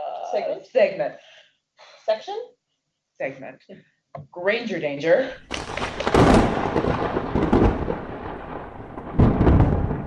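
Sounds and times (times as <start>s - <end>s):
speech: 0.3s - 1.3s, 2.1s - 2.6s, 3.2s - 6.9s
loud crack of thunder with long rumbling roll: 5.5s - 10.0s.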